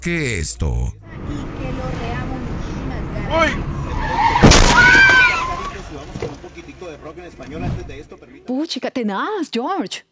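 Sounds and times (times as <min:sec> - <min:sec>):
speech: 0:00.0 - 0:04.2, 0:05.9 - 0:10.1
car crash: 0:01.6 - 0:08.2
windshield glass breaking: 0:04.4 - 0:05.6.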